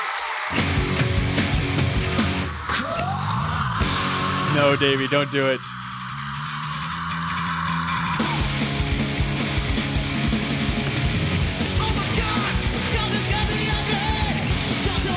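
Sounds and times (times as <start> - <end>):
loud, dense rock music: 0.0 - 15.1
singer screaming: 2.6 - 8.6
speech: 4.6 - 5.7.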